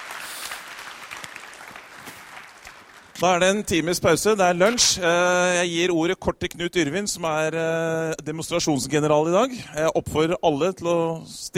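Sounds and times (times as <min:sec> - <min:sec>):
room full of people clapping: 0:00.0 - 0:03.6
speech: 0:03.2 - 0:11.5.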